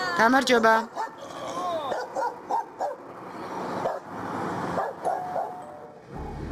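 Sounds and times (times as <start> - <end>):
speech: 0.2 - 1.0
several agitated dogs barking and yipping around a stranger: 0.9 - 3.1, 3.8 - 6.4.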